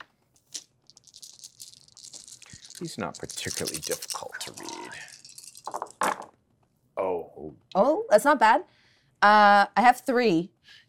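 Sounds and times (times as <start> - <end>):
six dice rattling and clattering across a hard surface: 0.4 - 6.4
speech: 2.8 - 5.0, 7.7 - 10.5.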